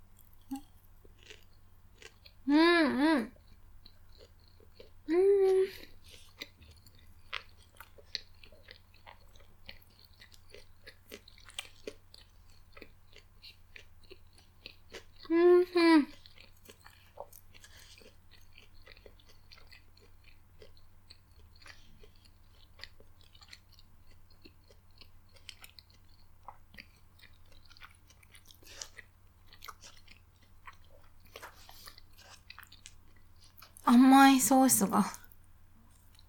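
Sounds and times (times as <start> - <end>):
chewing on a breaded cutlet: 0.0 - 2.5, 3.3 - 15.4, 16.1 - 33.9, 35.1 - 36.2
person humming: 2.5 - 3.3, 5.1 - 5.9, 15.3 - 16.1
speech: 34.0 - 35.2.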